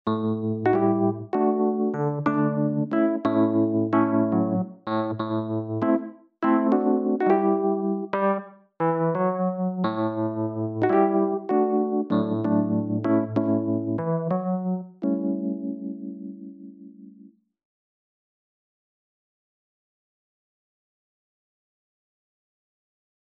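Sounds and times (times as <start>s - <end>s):
Wurly electric piano: 0.0s - 17.3s.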